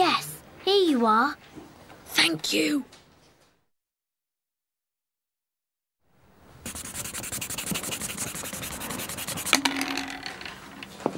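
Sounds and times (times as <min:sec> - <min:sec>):
speech: 0:00.9 - 0:01.6, 0:02.2 - 0:03.0
pencil eraser rubbing briskly on paper: 0:06.6 - 0:09.6.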